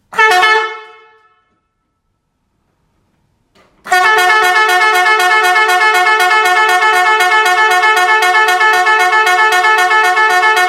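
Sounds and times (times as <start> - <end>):
12V pneumatic fanfare car horn steady tone: 0.1 - 2.2, 3.8 - 10.6.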